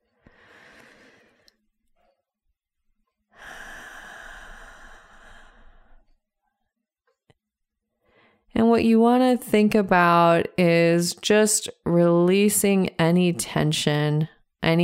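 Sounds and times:
person deep breathing into the stomach in a seated position: 0.0s - 1.6s, 3.3s - 6.1s
speech: 8.7s - 14.8s.

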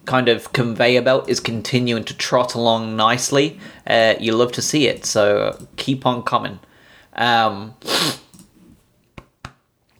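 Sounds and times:
speech: 0.0s - 8.2s
aborted sneeze: 7.8s - 8.4s.

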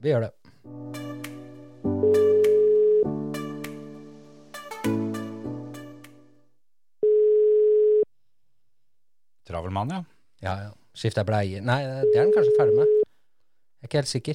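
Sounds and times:
speech: 0.0s - 0.9s, 9.7s - 12.9s, 13.9s - 14.3s
electronic tones of an outgoing phone call: 2.0s - 3.1s, 7.0s - 8.1s, 12.0s - 13.0s.

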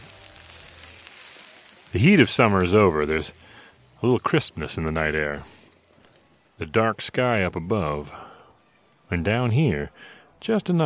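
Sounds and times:
Italian sausages sizzling on a grill in a backyard near Fresno: 0.0s - 10.4s
speech: 1.9s - 5.6s, 6.6s - 8.3s, 9.1s - 10.8s.

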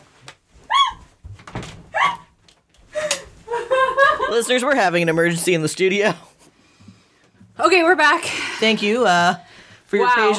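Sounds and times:
door creaking as it is opened in a studio: 0.9s - 2.8s
door thumping and knocking as it is worked open in a studio: 1.2s - 2.0s
laughter: 3.0s - 4.5s
speech: 4.3s - 6.3s, 7.6s - 10.3s.

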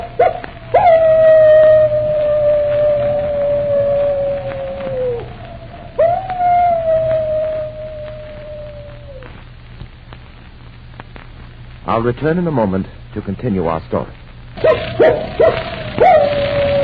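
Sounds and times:
wolf dog howling: 0.0s - 9.4s, 14.6s - 16.8s
low hum: 0.0s - 16.8s
speech: 12.0s - 15.4s.

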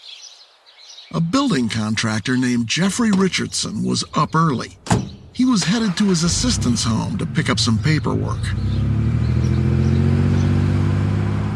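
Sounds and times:
speech: 1.1s - 8.8s
truck engine pulling up to a house on a foggy morning: 2.7s - 11.5s.

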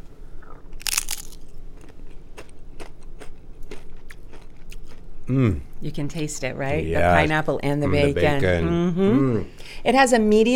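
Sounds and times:
low steady noise: 0.0s - 10.5s
taco chip crunched while tasting a pineapple-and-bacon salsa dip: 0.4s - 5.0s
speech: 5.3s - 10.5s.

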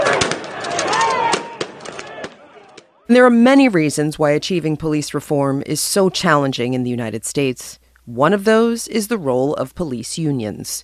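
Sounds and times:
flashbang grenades exploding at protesters: 0.0s - 2.4s
pepper ball guns firing at protesters: 0.0s - 2.8s
roaring crowd-like rush: 0.0s - 3.0s
speech: 3.1s - 10.8s.

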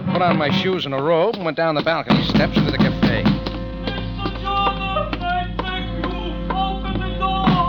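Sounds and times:
speech: 0.2s - 3.4s
heavy pounding on a cafe's glass-paned front door: 1.3s - 3.5s
sustained tonal hum: 2.1s - 7.6s.

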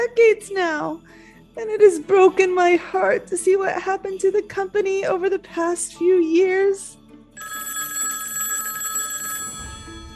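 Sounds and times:
speech: 0.1s - 7.0s
telephone bell ringing: 7.4s - 10.1s.

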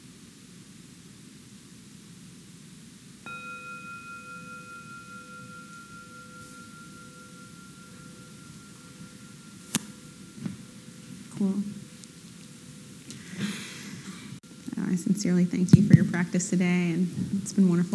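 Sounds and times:
soft hiss: 0.0s - 17.9s
meditation bell struck to close a meditation practice period: 3.2s - 13.1s
speech: 11.4s - 11.8s, 15.0s - 17.9s.

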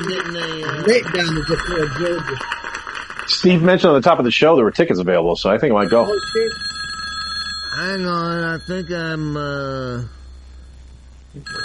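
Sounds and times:
speech: 0.0s - 2.6s, 3.3s - 6.7s, 7.7s - 10.2s, 11.4s - 11.6s
telephone ringing with bright buzzing tone: 0.0s - 3.6s, 5.7s - 10.7s, 11.4s - 11.6s.

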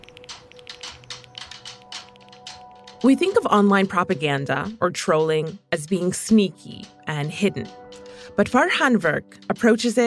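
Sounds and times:
rapid typing on computer keyboards: 0.0s - 6.4s
speech: 3.0s - 7.8s, 8.4s - 10.0s.

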